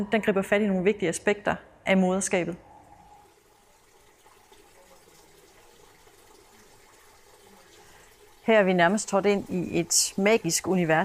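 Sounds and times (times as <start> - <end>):
speech: 0.0 - 2.7, 8.5 - 11.0
running water: 2.8 - 11.0.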